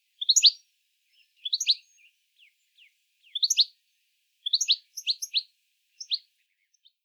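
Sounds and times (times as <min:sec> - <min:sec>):
European goldfinch: 0:00.2 - 0:02.1, 0:04.4 - 0:05.4.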